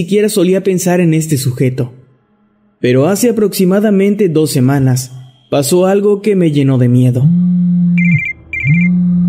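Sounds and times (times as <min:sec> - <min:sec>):
speech: 0:00.0 - 0:02.0, 0:02.8 - 0:07.4
telephone ringing with buzzing tone and chirping trill: 0:08.0 - 0:09.1.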